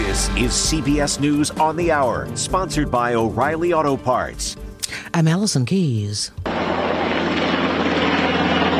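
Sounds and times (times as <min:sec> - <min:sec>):
speech: 0:00.1 - 0:06.7
helicopter flying over Mandeville Canyon in Southern California during wildfires: 0:06.5 - 0:08.7.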